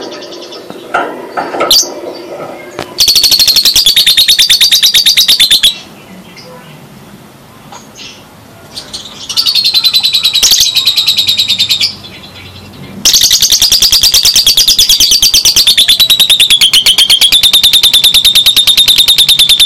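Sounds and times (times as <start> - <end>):
Java sparrow singing: 3.0 - 5.9, 8.9 - 12.0, 13.0 - 19.6.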